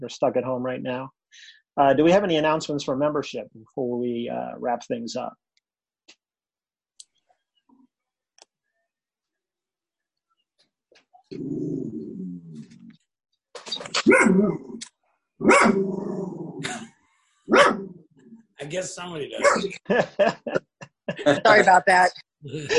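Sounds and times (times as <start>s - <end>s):
speech: 0.0s - 5.4s, 11.3s - 12.7s, 13.8s - 14.8s, 15.4s - 16.8s, 17.5s - 18.0s, 18.6s - 22.7s
dog growling: 11.3s - 12.9s, 14.0s - 14.8s, 15.4s - 16.8s
dog barking: 14.0s - 14.5s, 15.4s - 15.8s, 17.5s - 17.9s, 19.4s - 19.7s
laughter: 16.6s - 16.9s, 18.6s - 22.7s.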